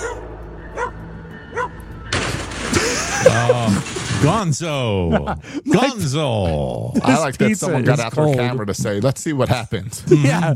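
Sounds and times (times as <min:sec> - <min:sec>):
dog barking: 0:00.0 - 0:00.2, 0:00.8 - 0:01.8
laughter: 0:02.7 - 0:06.0, 0:06.8 - 0:08.6
speech: 0:03.2 - 0:10.5.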